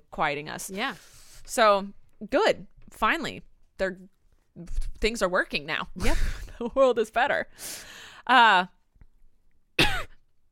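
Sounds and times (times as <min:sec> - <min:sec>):
speech: 0:00.2 - 0:08.8
person coughing: 0:09.8 - 0:10.2.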